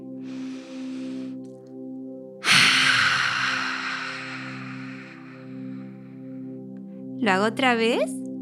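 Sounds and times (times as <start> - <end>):
breathy inhale in a breathing exercise: 0.2 - 1.5, 2.4 - 6.7
forceful roaring exhale with tongue out in a breathing exercise: 2.4 - 6.0
speech: 7.2 - 8.2.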